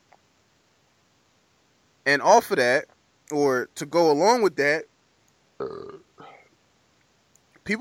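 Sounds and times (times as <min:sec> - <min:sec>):
speech: 0:02.1 - 0:04.9, 0:05.6 - 0:06.1
loud throaty burps: 0:05.6 - 0:06.4.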